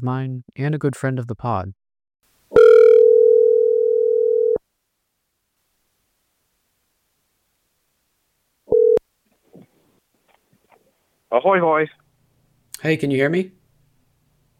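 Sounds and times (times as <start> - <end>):
speech: 0.0 - 1.8, 11.3 - 12.0, 12.8 - 13.6
telephone dial tone as a call is placed: 2.6 - 4.6, 8.7 - 9.0.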